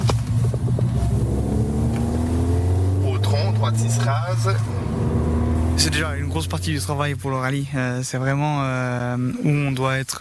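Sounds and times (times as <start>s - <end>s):
Renault Clio Rally 5 rally car engine droning on a rally stage in Italy: 0.0s - 7.6s
speech: 3.8s - 5.1s, 5.8s - 10.1s.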